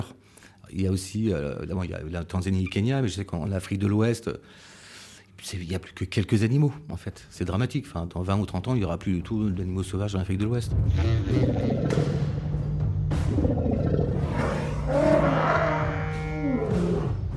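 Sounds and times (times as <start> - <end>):
speech: 0.7 - 4.8, 5.4 - 12.4
person imitating a lion's roar with rumbling growls: 11.0 - 12.3, 13.3 - 17.2.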